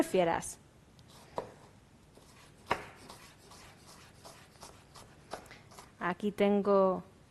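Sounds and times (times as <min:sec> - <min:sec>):
speech: 0:00.0 - 0:00.6, 0:06.0 - 0:07.1
knife chopping an onion on a cutting board: 0:02.2 - 0:05.9.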